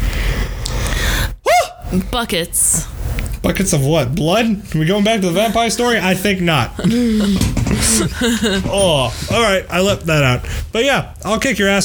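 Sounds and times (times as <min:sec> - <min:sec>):
person yawning with a breathy inhale: 0:00.9 - 0:01.8
speech: 0:01.9 - 0:11.8
laughter: 0:04.8 - 0:10.5.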